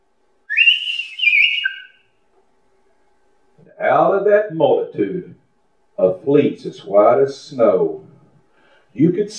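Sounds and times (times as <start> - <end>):
shepherd's whistle calling sheep: 0.5 - 2.2
speech: 3.6 - 5.4, 6.0 - 8.0, 9.0 - 9.3.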